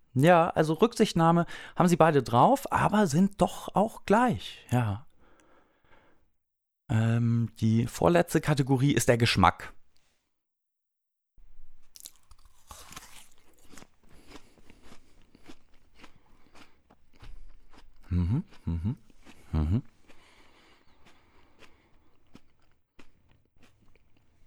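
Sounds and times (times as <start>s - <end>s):
speech: 0.2s - 5.1s, 6.9s - 9.8s, 18.1s - 19.9s
biting into an apple: 11.8s - 24.4s
wet crackly chewing of an apple: 11.9s - 24.4s.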